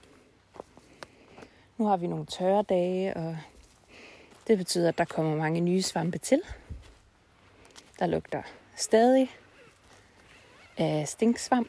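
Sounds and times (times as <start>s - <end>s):
footsteps on soft muddy ground by a stream: 0.0s - 11.6s
speech: 1.8s - 3.5s, 4.5s - 6.6s, 8.0s - 9.4s, 10.8s - 11.6s.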